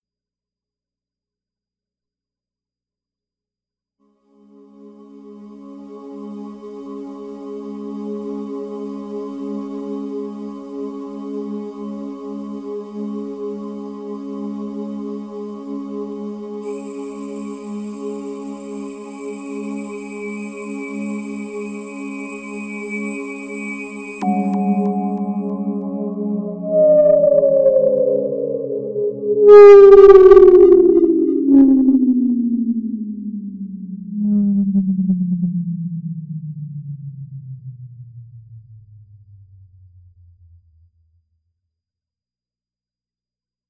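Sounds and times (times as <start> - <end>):
D flat drone sweep: 24.2 - 40.9.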